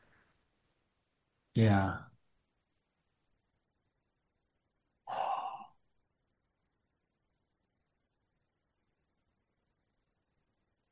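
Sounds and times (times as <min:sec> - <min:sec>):
breathy yawns: 0:05.1 - 0:05.8.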